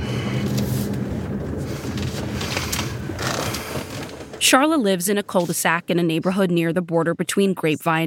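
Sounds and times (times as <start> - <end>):
road noise: 0.0 - 5.7
car engine rumble: 0.0 - 6.1
speech: 4.4 - 8.0.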